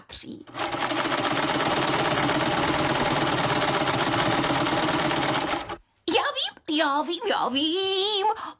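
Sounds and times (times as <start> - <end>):
speech: 0.1 - 1.4, 6.8 - 8.5
sewing machine running: 0.5 - 5.8.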